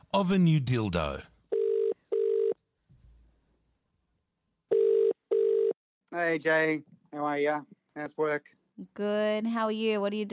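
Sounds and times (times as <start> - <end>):
speech: 0.1 - 1.3, 6.1 - 10.3
telephone ringback tone in a double-ring pattern: 1.5 - 2.6, 4.7 - 5.8.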